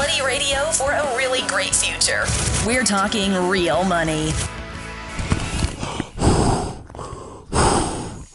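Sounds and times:
speech: 0:00.2 - 0:04.5
heavy breathing into a paper bag: 0:05.1 - 0:08.3.

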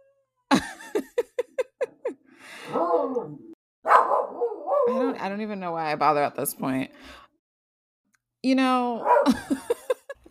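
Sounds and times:
laughter: 0:00.5 - 0:02.2, 0:09.3 - 0:10.3
speech: 0:02.7 - 0:03.5, 0:04.9 - 0:07.2, 0:08.4 - 0:09.6
dog barking: 0:02.7 - 0:05.1, 0:09.0 - 0:09.4.

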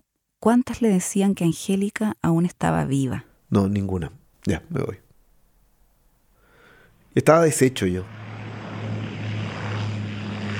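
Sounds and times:
speech: 0:00.4 - 0:05.0, 0:07.2 - 0:08.2
small propeller plane flying from an island to the mainland: 0:07.6 - 0:10.5.

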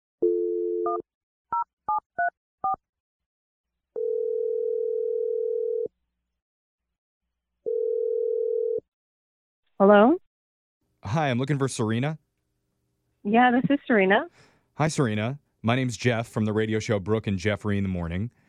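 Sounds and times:
telephone dial tone: 0:00.2 - 0:01.0, 0:04.0 - 0:05.9, 0:07.7 - 0:08.9
speech: 0:09.8 - 0:10.2, 0:11.1 - 0:12.2, 0:13.2 - 0:18.4.

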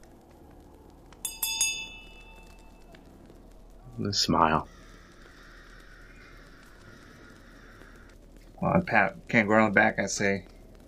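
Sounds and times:
small hand bell ringing: 0:01.3 - 0:02.6
speech: 0:04.0 - 0:04.8, 0:08.6 - 0:10.5.

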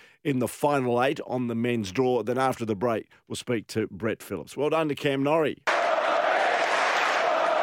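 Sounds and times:
speech: 0:00.2 - 0:05.7
large tennis crowd roaring and cheering: 0:05.7 - 0:07.6.

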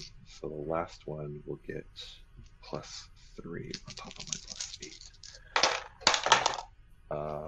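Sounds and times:
speech: 0:00.0 - 0:05.0, 0:07.1 - 0:07.4
dice clattering across a hard tabletop: 0:03.7 - 0:06.7.

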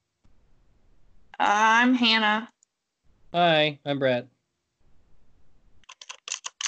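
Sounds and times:
speech: 0:01.4 - 0:02.5, 0:03.3 - 0:04.3
loud rapid typing on a computer keyboard: 0:05.8 - 0:06.6.

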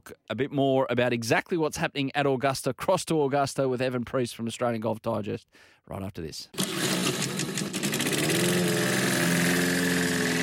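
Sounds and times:
speech: 0:00.0 - 0:07.2
small lawn mower engine starting and running: 0:06.6 - 0:10.4.

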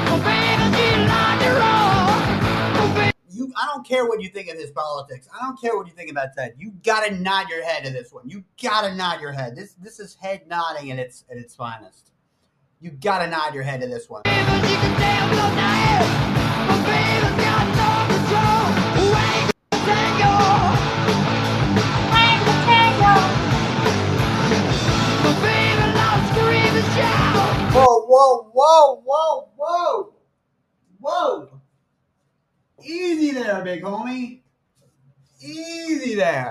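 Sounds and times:
loud dense rock band playing: 0:00.0 - 0:03.1, 0:14.3 - 0:27.8
speech: 0:03.8 - 0:12.1, 0:12.8 - 0:18.4, 0:27.0 - 0:30.2, 0:31.0 - 0:31.6, 0:32.8 - 0:34.4, 0:35.4 - 0:36.4
man screaming hoarsely: 0:27.0 - 0:30.1.

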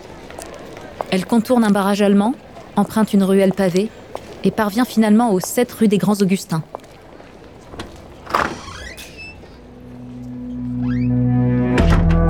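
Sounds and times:
speech: 0:01.0 - 0:06.8
rising door hinge squeaks: 0:07.6 - 0:11.2
art studio door creaking open: 0:07.6 - 0:12.2
solid door latch thunk: 0:07.7 - 0:10.4.

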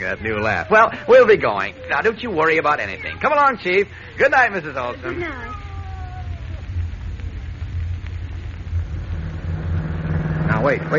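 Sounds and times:
speech: 0:00.0 - 0:05.6, 0:10.6 - 0:10.9
faint hiss: 0:00.0 - 0:10.9
car engine running with a deep low rumble: 0:08.5 - 0:10.9.

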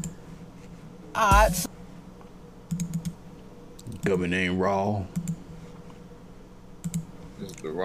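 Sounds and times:
low hum: 0:00.0 - 0:07.8
speech: 0:01.2 - 0:01.8, 0:04.1 - 0:05.2, 0:07.6 - 0:07.8
light computer clicks: 0:02.7 - 0:03.2, 0:06.8 - 0:07.6.

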